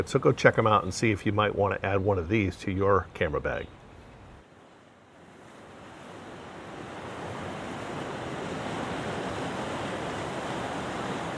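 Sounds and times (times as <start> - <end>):
speech: 0.0 - 3.8
waves washing over rocky tide pools: 5.2 - 11.3.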